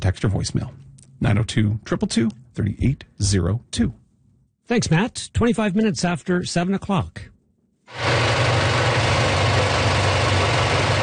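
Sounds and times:
speech: 0:00.1 - 0:04.0, 0:04.7 - 0:07.3
IMAX film projector running in a Halifax cinema: 0:07.9 - 0:11.0.

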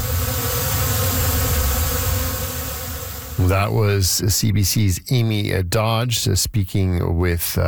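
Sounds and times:
bees buzzing inside a hive used for bee bed therapy: 0:00.0 - 0:03.4
speech: 0:03.4 - 0:07.6.

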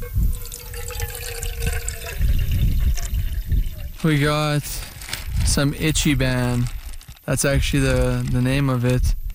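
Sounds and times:
water poured into a container for noodles: 0:00.3 - 0:04.2
speech: 0:04.0 - 0:04.9, 0:05.5 - 0:06.7, 0:07.3 - 0:09.2.

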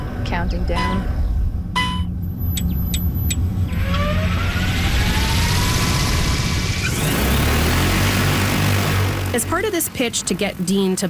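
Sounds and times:
speech: 0:00.3 - 0:01.2, 0:09.3 - 0:11.0
short electronic beeps: 0:00.8 - 0:01.1, 0:01.8 - 0:03.4
large agricultural spray drone motors roaring: 0:02.4 - 0:10.6.

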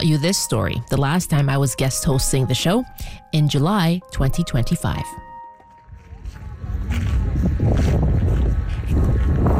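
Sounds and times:
speech: 0:00.0 - 0:05.3
strong wind roaring in an exposed outdoor place: 0:05.9 - 0:09.5.

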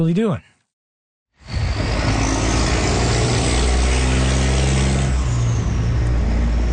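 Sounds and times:
speech: 0:00.0 - 0:00.5
heavy trucks rumbling past on a busy road: 0:01.4 - 0:06.7.

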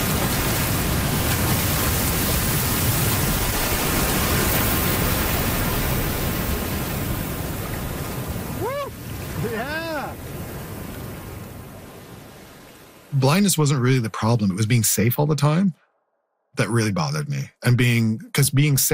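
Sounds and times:
ocean wave rolling in while surfing: 0:00.0 - 0:13.2
speech: 0:13.2 - 0:15.8, 0:16.6 - 0:18.9.

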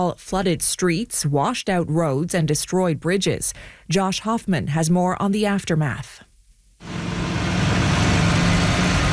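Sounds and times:
speech: 0:00.0 - 0:07.0
bulldozer and dump truck diesel engines rumbling: 0:06.8 - 0:09.1.

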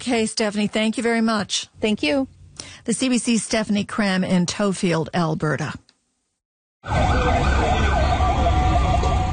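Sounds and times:
speech: 0:00.0 - 0:05.8, 0:06.8 - 0:07.7
fire truck siren wailing on city streets in Caracas Venezuela after earthquakes: 0:06.8 - 0:09.3
steady roar of city traffic in Caracas Venezuela: 0:06.8 - 0:09.3.

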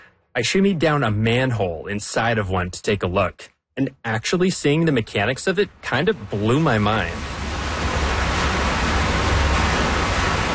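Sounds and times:
speech: 0:00.4 - 0:07.4
meltwater rushing into an underground reservoir: 0:05.0 - 0:10.5.

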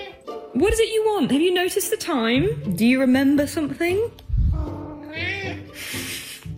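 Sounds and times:
cat meowing for its dinner after coming in from outside: 0:00.0 - 0:00.2, 0:04.5 - 0:05.8
speech: 0:00.6 - 0:04.2.

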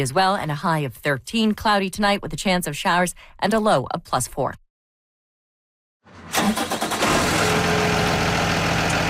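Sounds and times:
speech: 0:00.0 - 0:04.6
yellow school bus engine cranking and starting: 0:06.1 - 0:09.0.

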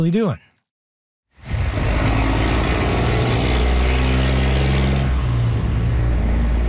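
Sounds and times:
speech: 0:00.0 - 0:00.5
heavy trucks rumbling past on a busy road: 0:01.5 - 0:06.6
tires hissing: 0:05.3 - 0:06.6.

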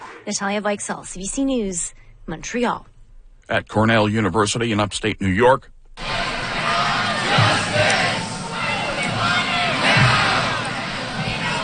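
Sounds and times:
speech: 0:00.2 - 0:02.9, 0:03.5 - 0:05.7
large crowd of protesters chanting slogans outdoors on a university campus: 0:06.0 - 0:11.6.

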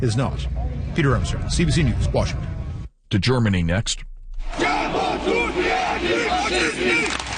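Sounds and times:
speech: 0:00.0 - 0:04.6
large protest crowd shouting and chanting: 0:04.4 - 0:07.2.

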